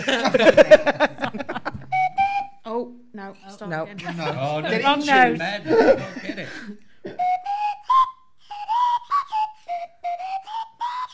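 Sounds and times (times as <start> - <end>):
speech: 0.0 - 1.2, 3.9 - 6.7
laughter: 0.0 - 2.0, 5.6 - 7.3
whistled pop tune with bouncy melodic notes: 1.7 - 2.8, 7.1 - 11.1.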